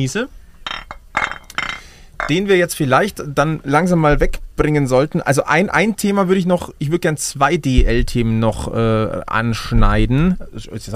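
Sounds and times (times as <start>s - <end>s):
speech: 0.0s - 0.4s, 2.3s - 10.9s
beer glasses clinking in a toast: 0.6s - 2.4s.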